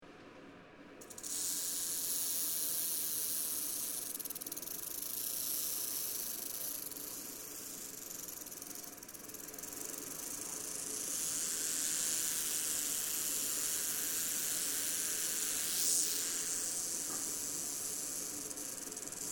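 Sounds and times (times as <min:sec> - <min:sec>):
Rock rattlesnake rattling, Crotalus lepidus: 0:01.0 - 0:19.3.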